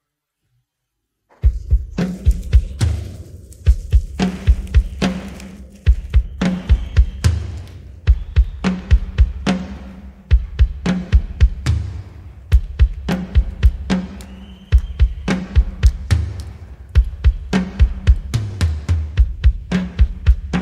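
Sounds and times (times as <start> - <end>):
drum pattern intro: 1.3 - 20.6.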